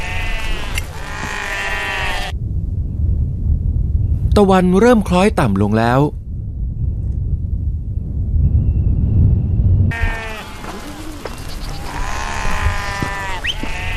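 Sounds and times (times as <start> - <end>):
flock of sheep bleating: 0.0 - 2.4, 9.9 - 13.9
low wind rumble: 0.0 - 13.9
speech: 4.4 - 6.2.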